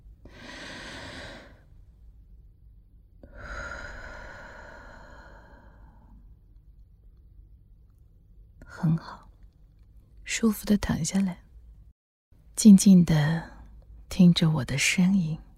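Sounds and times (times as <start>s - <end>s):
slow deep breath during a guided relaxation: 0.2s - 1.7s, 3.2s - 6.3s
speech: 8.8s - 9.2s, 10.4s - 11.4s, 12.6s - 13.5s, 14.1s - 15.4s.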